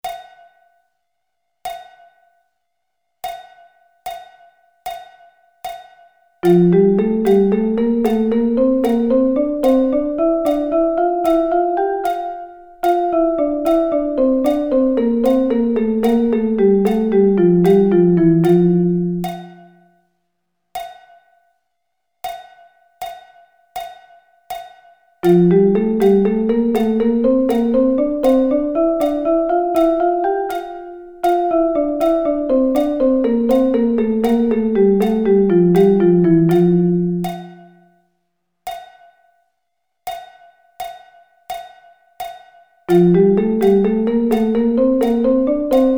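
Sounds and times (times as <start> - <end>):
double sticking drumming: 6.4 - 19.8, 24.5 - 37.8, 41.6 - 45.9.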